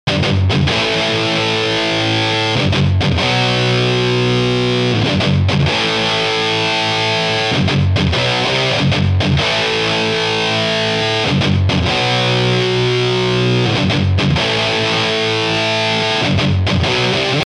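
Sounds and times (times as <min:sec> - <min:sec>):
guitar intro: 0:00.0 - 0:17.4.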